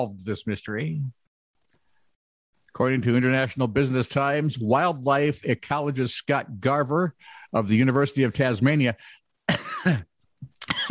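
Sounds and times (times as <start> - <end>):
speech: 0.0 - 1.2, 2.8 - 10.9
harsh coughs: 9.5 - 10.9.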